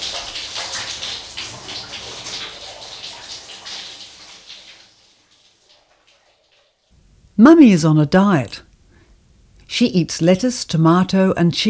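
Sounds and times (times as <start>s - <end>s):
shower water running: 0.0s - 7.0s
speech: 7.4s - 8.7s, 9.8s - 11.6s.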